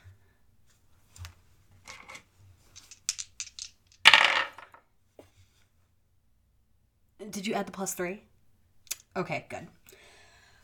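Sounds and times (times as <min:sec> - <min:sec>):
dice rolled across a hard surface for a dexterity check: 0:01.9 - 0:04.8
speech: 0:07.3 - 0:08.3, 0:09.2 - 0:09.8.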